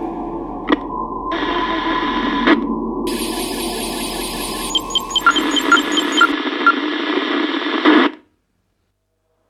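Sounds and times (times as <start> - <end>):
hissing radio static: 1.3 - 8.2.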